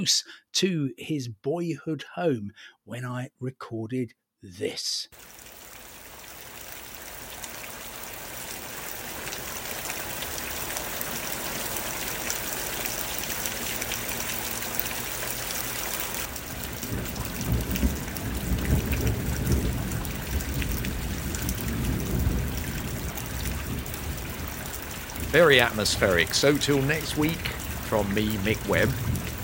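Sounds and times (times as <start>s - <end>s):
speech: 0.0s - 5.5s, 25.3s - 29.2s
heavy rain: 5.2s - 29.4s
deep rumble of thunder: 16.2s - 29.4s.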